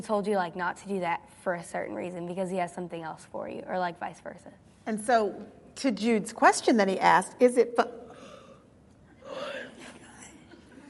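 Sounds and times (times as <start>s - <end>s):
speech: 0.0s - 8.0s
man yawning: 9.2s - 9.8s.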